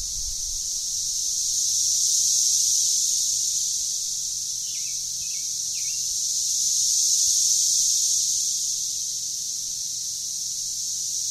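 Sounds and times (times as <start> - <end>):
13-year periodical cicadas chorus under backyard trees in Franklin Tennessee: 0.0 - 11.2.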